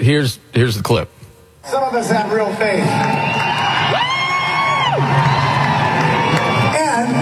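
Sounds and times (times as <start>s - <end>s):
speech: 0.0s - 4.0s
large concert crowd booing and yelling: 1.7s - 7.2s.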